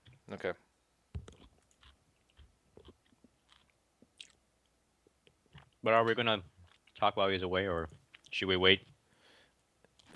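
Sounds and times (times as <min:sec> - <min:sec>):
speech: 0:00.3 - 0:00.7, 0:05.8 - 0:08.9
chewing food: 0:01.2 - 0:07.1, 0:07.8 - 0:08.4.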